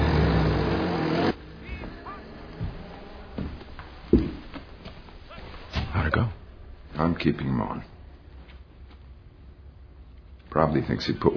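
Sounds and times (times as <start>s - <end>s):
car engine roaring as the car drives off: 0.0s - 4.1s
speech: 7.0s - 7.9s, 10.5s - 11.3s.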